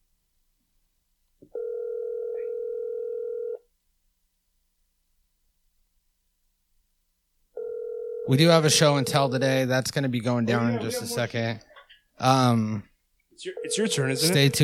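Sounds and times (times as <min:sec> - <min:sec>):
telephone ringback tone while waiting for a store associate: 0:01.5 - 0:03.6, 0:07.6 - 0:09.2, 0:13.6 - 0:14.6
speech: 0:08.3 - 0:14.6.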